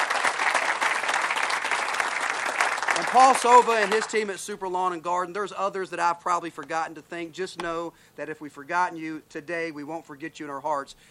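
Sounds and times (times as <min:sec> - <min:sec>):
audience applauding: 0:00.0 - 0:04.3
speech: 0:03.0 - 0:11.1.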